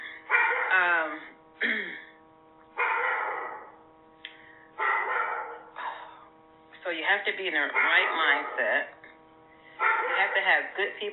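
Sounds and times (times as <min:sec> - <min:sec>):
dog barking at another dog: 0:00.3 - 0:00.8, 0:02.8 - 0:03.8, 0:04.8 - 0:05.8, 0:07.7 - 0:08.8, 0:09.8 - 0:10.6
speech: 0:07.1 - 0:09.0, 0:10.3 - 0:11.1.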